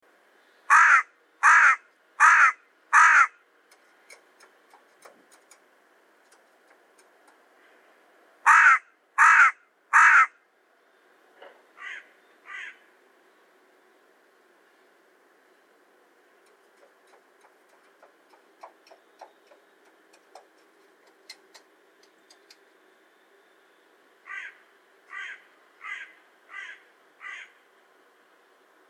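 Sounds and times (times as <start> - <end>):
hooded crow Corvus cornix calling: 0.7 - 3.4, 8.4 - 10.4, 11.8 - 12.9, 24.2 - 27.6.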